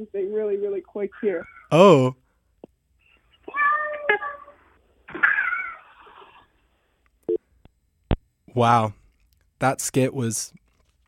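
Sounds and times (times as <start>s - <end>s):
speech: 0.0s - 2.2s, 8.5s - 9.0s, 9.6s - 10.6s
cat meowing: 3.4s - 6.3s.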